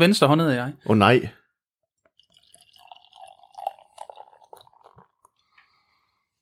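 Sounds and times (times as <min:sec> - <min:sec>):
speech: 0:00.0 - 0:01.4
dark beer pouring into a glass: 0:01.9 - 0:06.2
beer drips: 0:02.0 - 0:06.2
soft fizz of settling beer: 0:02.0 - 0:06.4.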